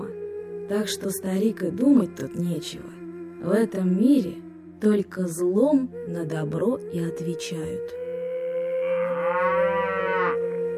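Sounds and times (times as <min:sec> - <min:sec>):
speech: 0:00.7 - 0:08.0
cow mooing: 0:08.4 - 0:10.6.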